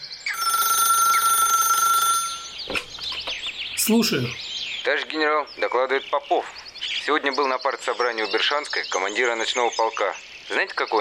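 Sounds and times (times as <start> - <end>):
telephone ringing in a general's office: 0.3 - 3.3
speech: 3.9 - 10.9.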